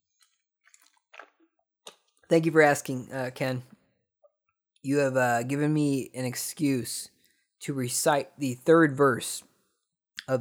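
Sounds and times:
person gulping water: 0.2 - 2.0
speech: 2.3 - 3.7, 4.8 - 9.5.

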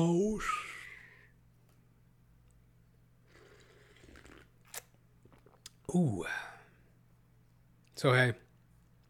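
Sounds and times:
faint steady hum: 0.0 - 9.0
person slurping tea: 3.3 - 5.6
speech: 5.9 - 6.5, 8.0 - 8.4.

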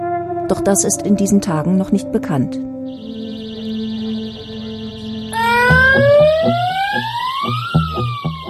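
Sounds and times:
speech: 0.5 - 3.1
electronic alarm wailing during a disaster drill: 2.9 - 8.4
pulsing beat: 2.9 - 8.4.

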